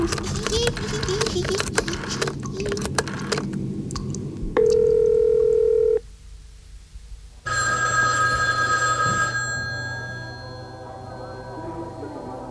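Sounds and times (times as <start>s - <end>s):
clatter and clicks: 0.0s - 4.2s
bright trilling telephone ring: 4.6s - 6.0s, 7.5s - 12.4s.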